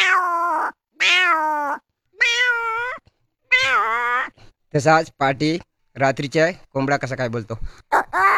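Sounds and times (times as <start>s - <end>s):
hungry cat meowing: 0.0s - 4.4s
speech: 4.7s - 8.2s.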